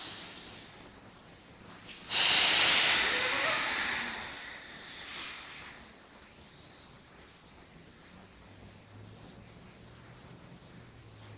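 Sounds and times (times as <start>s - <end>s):
long forceful exhale during a breathing exercise: 2.1s - 5.8s.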